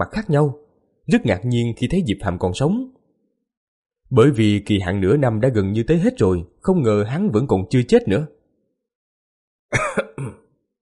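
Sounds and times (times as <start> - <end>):
speech: 0.0 - 3.0, 4.1 - 8.4
person coughing up blood: 9.7 - 10.5.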